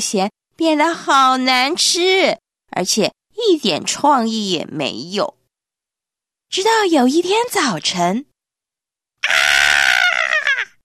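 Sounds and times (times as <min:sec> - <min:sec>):
speech: 0:00.0 - 0:05.4, 0:06.5 - 0:08.3
high-pitched scream from a living room: 0:09.2 - 0:10.8.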